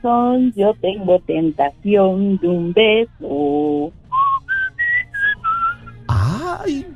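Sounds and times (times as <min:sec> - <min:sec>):
speech: 0:00.0 - 0:04.0
faint hum of noise: 0:00.0 - 0:06.9
person whistling a short melody: 0:04.1 - 0:06.1.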